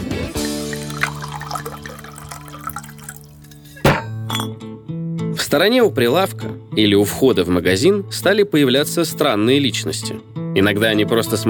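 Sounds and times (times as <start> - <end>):
vodka glugging from a bottle into a faceted glass: 0.3 - 4.5
vodka splashing in a faceted glass: 0.4 - 3.8
speech: 5.5 - 11.4.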